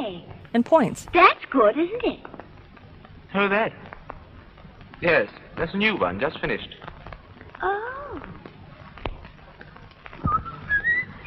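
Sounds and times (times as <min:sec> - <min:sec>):
speech: 0:00.5 - 0:02.3, 0:03.3 - 0:03.8, 0:05.0 - 0:06.8
man whistling a brief wandering melody: 0:10.3 - 0:11.2.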